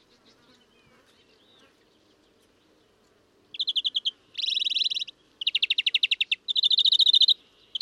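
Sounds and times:
European greenfinch Chloris chloris twittering: 3.6 - 7.8.

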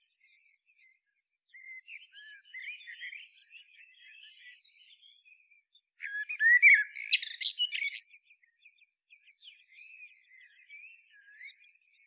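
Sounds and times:
common blackbird Turdus merula song: 6.4 - 8.0.

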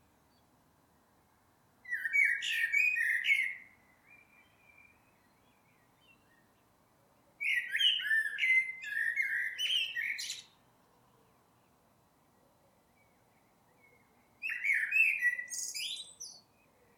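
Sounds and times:
Eurasian blackbird Turdus merula warbling song: 1.9 - 6.6, 7.4 - 10.6, 12.9 - 16.9.

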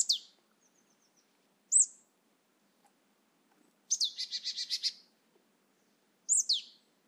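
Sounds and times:
Poecile palustris calling: 1.7 - 1.9, 3.9 - 5.0, 6.3 - 6.8.

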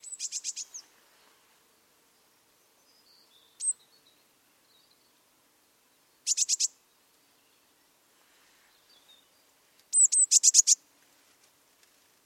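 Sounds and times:
Eurasian blue tit Cyanistes caeruleus giving high notes: 0.0 - 0.8, 3.5 - 3.9, 6.2 - 6.8, 9.9 - 10.8.

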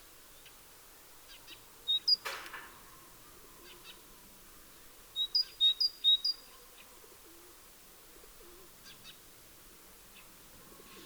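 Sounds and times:
Great tit song, Parus major: 1.3 - 2.3, 5.2 - 6.6.

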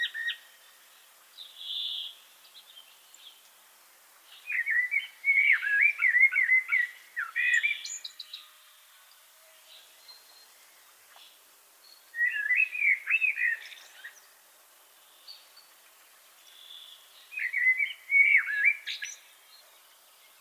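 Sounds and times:
Common blackbird Turdus merula singing a fluty warbled phrase: 4.4 - 8.6, 12.2 - 14.2, 16.6 - 19.3.

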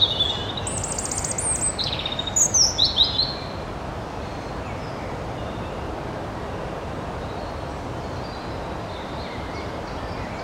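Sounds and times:
European robin Erithacus rubecula singing: 0.0 - 3.6
faint background hiss: 0.0 - 10.4.

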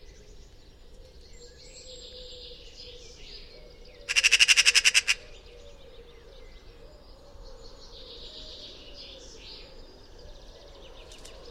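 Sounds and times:
Eurasian magpie Pica pica rasping chatter: 4.1 - 5.3.

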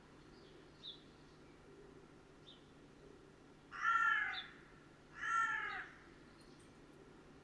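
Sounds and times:
carrion crow Corvus corone cawing: 3.7 - 6.1.

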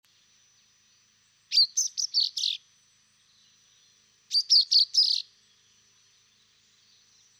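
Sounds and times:
common chaffinch Fringilla coelebs chirping: 1.5 - 2.6, 4.3 - 5.3.

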